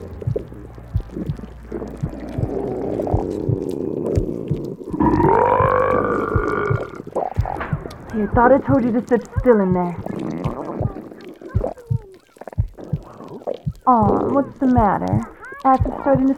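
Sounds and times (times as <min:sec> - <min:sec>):
wet churning sounds: 0:00.0 - 0:16.3
long deep gurgling burp: 0:04.3 - 0:07.1, 0:08.7 - 0:16.3
speech: 0:08.2 - 0:10.1, 0:13.9 - 0:16.3.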